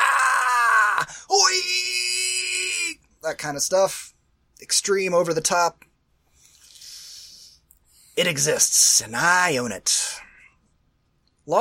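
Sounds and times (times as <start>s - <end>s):
person imitating martial arts fight screaming: 0.0s - 3.0s
speech: 3.2s - 5.9s, 8.2s - 10.3s.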